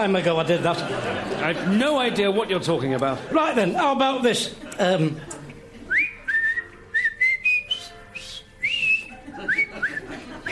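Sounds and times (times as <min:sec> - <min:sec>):
speech: 0:00.0 - 0:05.4
laughter: 0:00.1 - 0:06.6, 0:08.6 - 0:10.4
person whistling a jaunty military march tune: 0:05.9 - 0:10.4.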